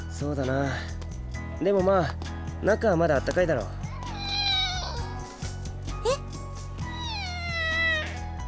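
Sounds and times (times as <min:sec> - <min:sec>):
speech: 0:00.2 - 0:00.9, 0:01.6 - 0:03.8
kitten meowing after being stepped on: 0:03.8 - 0:06.2, 0:06.8 - 0:08.4.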